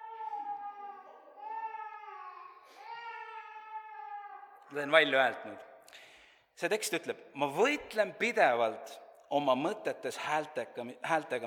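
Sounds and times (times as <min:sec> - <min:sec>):
child crying in long high wavering wails: 0:00.0 - 0:04.6
speech: 0:04.7 - 0:05.7, 0:06.6 - 0:11.4.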